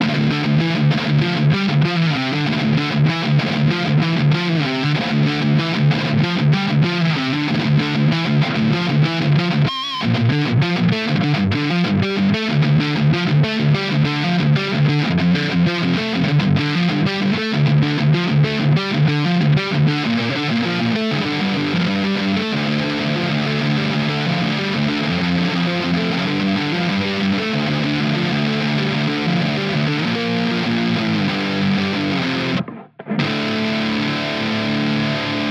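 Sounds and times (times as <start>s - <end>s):
ESP LTD MH 1001 NT electric guitar with high gain on neck pickup: 0.0s - 35.5s.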